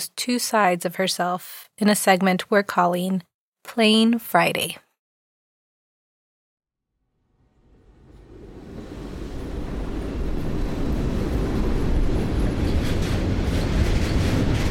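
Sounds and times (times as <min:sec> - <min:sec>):
speech: 0:00.1 - 0:04.8
train hurtling down tracks beside a strip club: 0:07.5 - 0:14.6.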